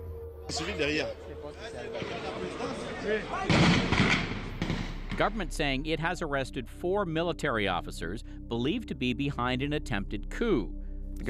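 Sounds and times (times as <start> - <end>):
speech: 0.5 - 4.3, 5.2 - 11.2
noisy street scene: 0.5 - 5.2
gunshots outside a radio station: 1.9 - 5.4.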